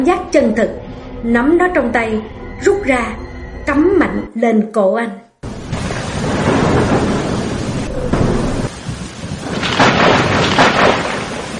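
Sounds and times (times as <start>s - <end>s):
speech: 0.0s - 5.2s
deep thunder rumbling: 5.4s - 11.5s
heavy rain pouring during a night thunderstorm: 5.4s - 11.5s.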